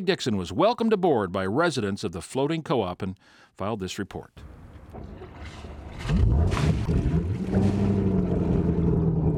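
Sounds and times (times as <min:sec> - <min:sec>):
speech: 0:00.0 - 0:07.8
classic Chris Craft yacht engine starting and rumbling: 0:04.4 - 0:09.3
splashy broadband bursts: 0:05.3 - 0:08.7.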